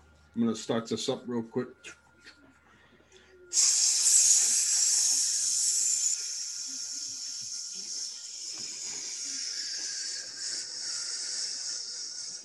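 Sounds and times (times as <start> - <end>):
speech: 0.4 - 2.0, 3.5 - 3.9
loud sizzling hiss with crackling: 3.5 - 12.4.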